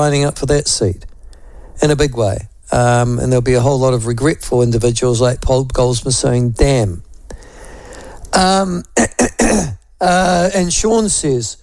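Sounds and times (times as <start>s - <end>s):
speech: 0.0s - 1.1s, 1.8s - 7.0s, 8.4s - 11.6s
person clearing throat with a raspy rumble: 8.7s - 9.8s
person coughing sharply: 9.0s - 9.8s.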